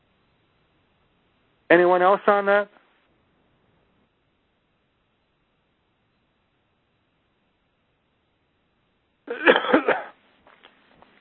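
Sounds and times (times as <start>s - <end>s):
speech: 1.7s - 2.8s
person coughing harshly: 9.3s - 10.2s.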